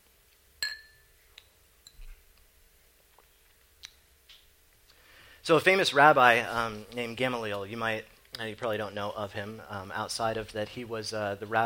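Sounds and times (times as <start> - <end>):
wine glasses clinking in a toast: 0.6 - 1.1
speech: 5.5 - 11.6.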